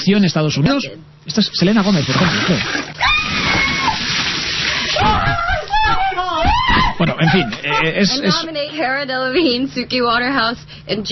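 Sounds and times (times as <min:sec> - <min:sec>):
speech: 0:00.0 - 0:03.1, 0:07.2 - 0:11.1
bucket of ice water pouring over a person's head: 0:01.8 - 0:05.4
person shrieking and yelping: 0:03.0 - 0:04.0, 0:04.9 - 0:07.0
laughter: 0:04.8 - 0:08.5.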